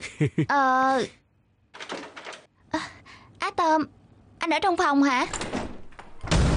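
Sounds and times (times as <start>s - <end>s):
speech: 0.2s - 1.2s, 3.6s - 5.6s
room door creaking open: 1.8s - 2.5s, 5.2s - 6.4s
room door latch clicks: 5.3s - 6.3s.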